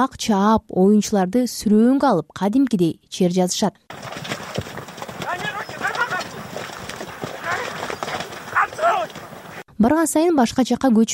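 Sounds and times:
speech: 0.0 - 4.3, 9.8 - 11.1
horses' hooves pounding during a mounted goat-carcass game: 3.9 - 9.7.

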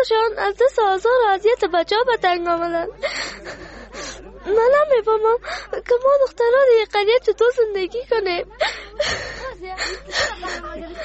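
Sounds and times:
speech: 0.0 - 3.8, 4.4 - 11.0
laughter: 3.0 - 4.8, 8.6 - 11.0
person crying and whimpering: 8.6 - 11.0.

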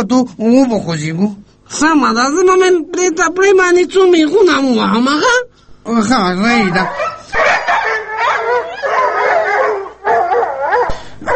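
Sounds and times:
speech: 0.0 - 7.5
dogs howling in a loud wavering chorus: 6.7 - 11.3.

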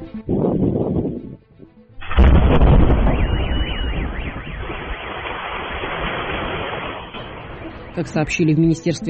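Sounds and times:
sustained roaring rumble: 2.0 - 7.7
powerful aerial bomb explosion: 2.0 - 7.8
car alarm wailing: 2.7 - 8.6
speech: 8.0 - 9.0.

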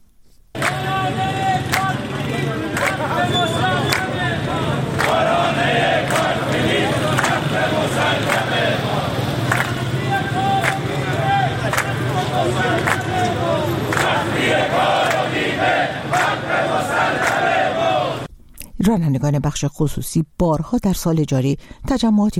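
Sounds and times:
sharp claps or bangs: 0.6 - 4.2, 4.9 - 18.0
protesting bus drivers chanting a slogan in Tehran: 0.6 - 18.3
steady clamor: 0.6 - 18.3
speech: 18.8 - 22.3.

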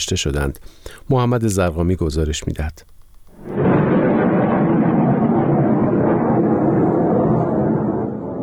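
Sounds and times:
speech: 0.0 - 3.5
loud deep continuous roar and rumble: 3.4 - 8.4
massive explosion: 3.4 - 8.4.

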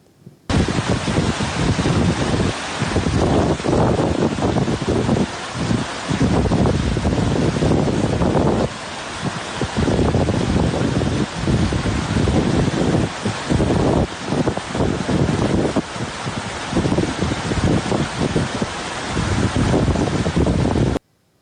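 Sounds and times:
floodwater rushing over a road in northern Sistan: 0.5 - 21.0
wind buffeting the microphone: 0.5 - 21.0.

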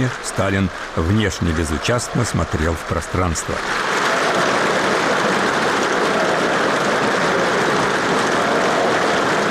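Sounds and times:
speech: 0.0 - 3.9
thunderous standing ovation from a large audience in a palace hall: 0.0 - 9.4.

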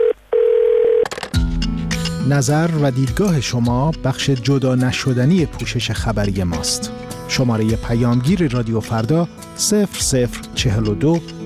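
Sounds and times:
telephone dial tone: 0.0 - 1.3
speech: 2.3 - 11.4.

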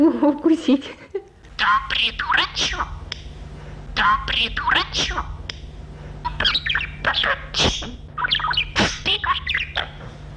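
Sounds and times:
steady low hum: 0.0 - 10.3
speech: 0.2 - 1.0, 1.6 - 3.0, 4.0 - 5.4, 6.4 - 9.9
small pet bird chirping and squawking in its cage: 1.6 - 3.0, 4.0 - 5.4, 6.2 - 10.2.

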